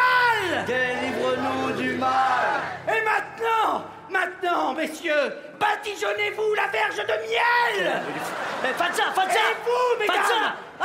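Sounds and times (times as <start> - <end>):
speech: 0.6 - 2.2, 3.1 - 10.8
audience shouting a phrase back in unison after a speaker: 1.0 - 2.9
laughter: 7.7 - 10.8.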